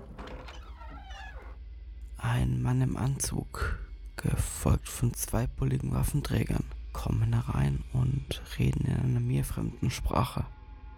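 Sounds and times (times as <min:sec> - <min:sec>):
door opening with a squealing hinge: 0:00.0 - 0:01.6
speech: 0:02.4 - 0:10.6.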